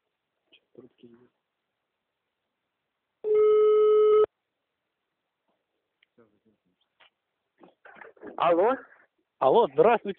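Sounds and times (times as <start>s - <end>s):
speech: 0.8s - 1.5s, 8.4s - 10.1s
telephone ringback tone while calling: 3.2s - 4.3s.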